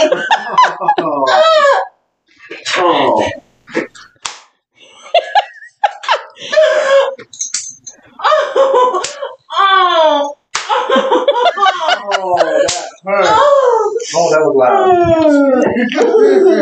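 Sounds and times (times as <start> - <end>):
loud voices and exclamations crying out and laughing: 0.0 - 2.0, 5.2 - 7.3, 8.1 - 16.6
spanking slaps: 4.2 - 4.6, 9.0 - 9.2, 10.5 - 11.0, 12.6 - 13.0.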